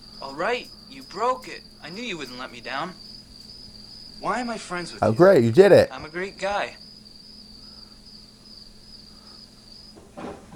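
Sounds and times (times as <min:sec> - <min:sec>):
crickets chirping: 0:00.0 - 0:10.5
speech: 0:00.3 - 0:03.1, 0:04.2 - 0:06.8
short clunk: 0:10.0 - 0:10.5.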